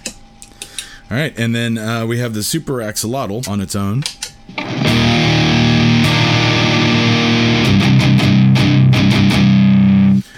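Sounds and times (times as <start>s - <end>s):
speech: 1.1s - 4.7s
electric guitar played through a low-gain fuzz pedal in sustained chords: 4.5s - 10.2s.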